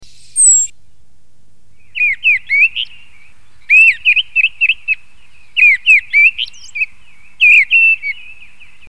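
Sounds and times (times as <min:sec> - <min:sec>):
mistle thrush: 0:00.0 - 0:01.1, 0:01.7 - 0:08.8.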